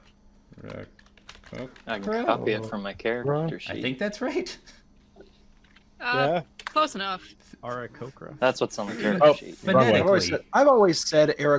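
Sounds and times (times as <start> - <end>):
typing on a computer keyboard: 0.6 - 1.9
speech: 0.6 - 4.8, 6.0 - 11.5.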